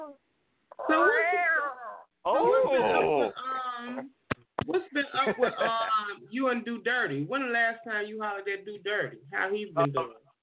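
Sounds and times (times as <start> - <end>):
cat meowing: 0.0 - 2.1
speech: 2.4 - 10.3.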